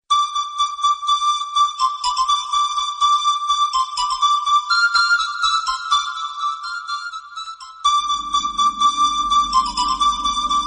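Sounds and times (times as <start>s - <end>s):
flute ringtone: 0.1s - 10.6s.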